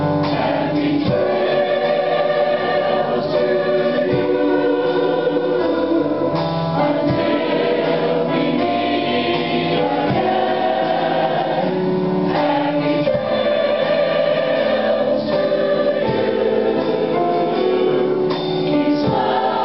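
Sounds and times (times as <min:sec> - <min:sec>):
choir singing: 0:00.2 - 0:19.6.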